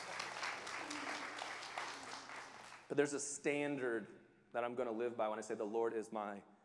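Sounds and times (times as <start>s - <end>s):
audience clapping: 0.0s - 2.9s
speech: 2.9s - 6.5s.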